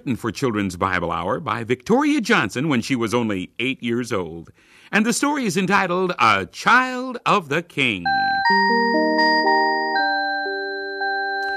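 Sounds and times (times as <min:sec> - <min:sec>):
speech: 0:00.0 - 0:09.6
multi-note doorbell chime ringing at a family home: 0:08.1 - 0:11.5.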